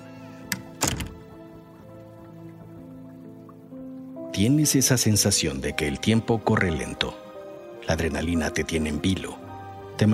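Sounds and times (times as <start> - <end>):
small click of a door latch: 0.5 - 1.2
door shutting with a solid thunk: 0.5 - 1.3
speech: 4.4 - 7.2, 7.9 - 9.4, 10.0 - 10.1.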